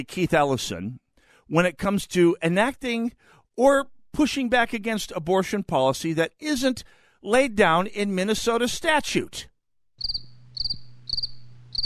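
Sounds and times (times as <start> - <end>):
speech: 0.0 - 10.7
crickets chirping sound effect: 10.0 - 11.8
low steady hum: 10.2 - 11.8.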